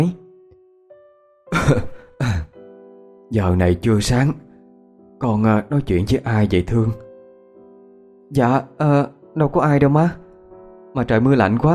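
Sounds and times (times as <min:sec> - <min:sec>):
speech: 0:00.0 - 0:00.2, 0:01.7 - 0:01.9, 0:03.3 - 0:04.5, 0:05.2 - 0:07.0, 0:08.3 - 0:10.2, 0:10.9 - 0:11.7
older woman coughing as she gets out of bed: 0:01.6 - 0:01.9.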